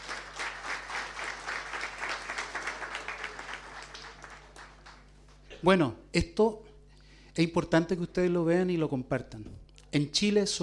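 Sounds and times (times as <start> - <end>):
audience applauding: 0.0 - 5.4
faint low hum: 0.0 - 10.6
speech: 5.6 - 6.7, 7.4 - 10.6.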